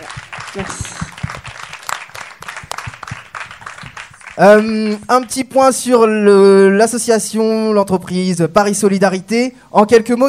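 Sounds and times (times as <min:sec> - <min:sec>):
audience applauding a guest: 0:00.0 - 0:05.1
speech: 0:00.5 - 0:01.0, 0:04.4 - 0:10.2.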